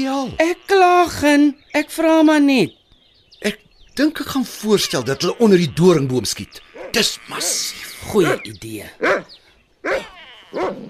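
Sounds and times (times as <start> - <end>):
speech: 0.0 - 2.8, 3.4 - 10.8
dog barking: 6.8 - 7.0, 9.0 - 10.8.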